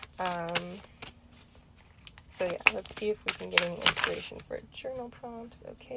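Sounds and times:
oracle cards being shuffled: 0.0 - 4.4
speech: 0.2 - 0.9, 2.4 - 5.9.

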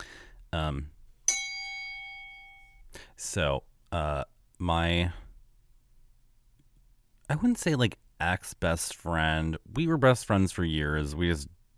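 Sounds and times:
speech: 0.6 - 1.0, 3.2 - 5.2, 7.3 - 11.6
single clear bell ding: 1.3 - 2.8.

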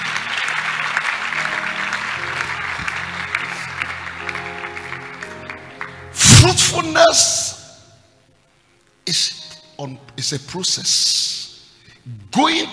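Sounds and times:
large crowd applauding: 0.0 - 7.2
speech: 6.7 - 7.4, 9.1 - 11.2.

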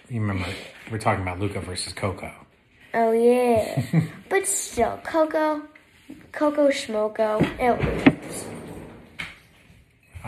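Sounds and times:
speech: 0.1 - 8.2
door pushed and knocking against its frame: 7.4 - 9.5.

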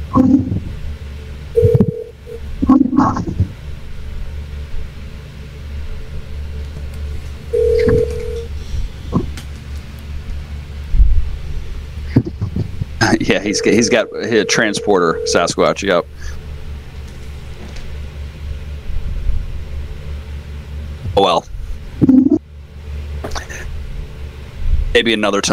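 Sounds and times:
low rumbling hum: 0.0 - 25.5
short electronic phone dialing tones beeping: 1.6 - 2.4, 7.6 - 8.5, 13.2 - 15.6
speech: 13.2 - 16.3, 25.0 - 25.5.

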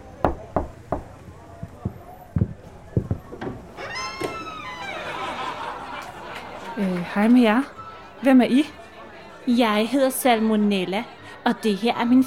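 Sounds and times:
high chattering voices: 0.0 - 12.2
sharp irregular knocks on a door: 0.2 - 3.6
laughter: 4.4 - 7.0
speech: 6.8 - 8.8, 9.5 - 12.2.

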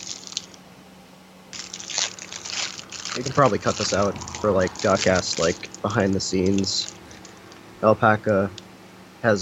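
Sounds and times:
chewing crunchy snack cakes mukbang style: 0.0 - 0.6, 1.5 - 7.6
speech: 3.2 - 7.0, 7.8 - 8.6, 9.2 - 9.4.

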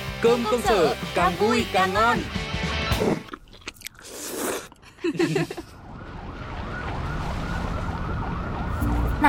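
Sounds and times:
speech: 0.2 - 2.4, 5.1 - 5.7
laughter: 4.9 - 5.7
ambulance siren wailing: 5.6 - 9.2.

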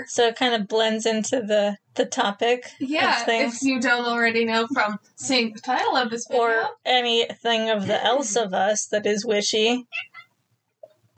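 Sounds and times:
speech: 0.0 - 10.1
cat meowing: 9.8 - 10.4.

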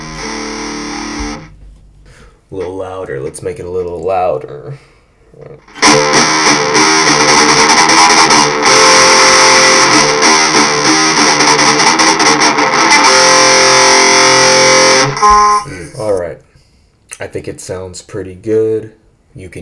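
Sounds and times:
electric guitar played through aggressive distortion effects: 0.0 - 1.8, 5.4 - 16.2
speech: 2.5 - 7.2, 17.2 - 19.6.

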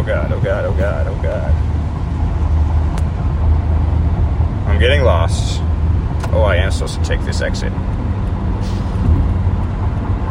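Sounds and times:
speech: 0.0 - 1.8, 4.8 - 5.7, 6.3 - 8.0
large truck rumbling: 0.0 - 10.2
road noise of a car moving fast in heavy highway traffic: 0.0 - 10.2.

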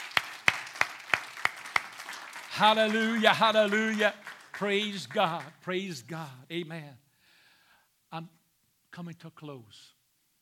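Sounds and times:
church audience clapping at the close of a sermon: 0.0 - 6.0
speech: 2.6 - 7.0, 8.1 - 10.0.

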